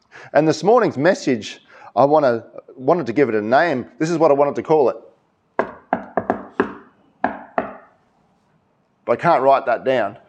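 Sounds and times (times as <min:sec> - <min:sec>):
speech: 0:00.3 - 0:05.1, 0:09.1 - 0:10.2
crisp knocks on a wooden surface: 0:05.6 - 0:07.9.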